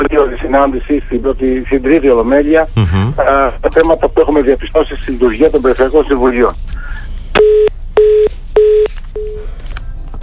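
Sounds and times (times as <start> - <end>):
speech: 0.0 - 7.8
telephone DTMF dialing tones while redialing a call: 7.4 - 9.4.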